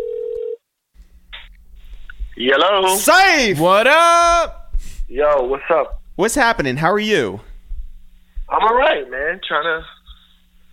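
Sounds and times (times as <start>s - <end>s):
telephone dial tone: 0.0s - 0.6s
speech: 2.4s - 7.5s, 8.5s - 10.0s.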